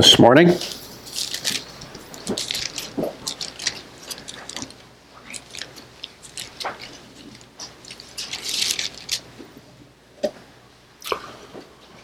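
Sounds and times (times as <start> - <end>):
thin Bible pages being turned and flipped: 0.6 - 9.5.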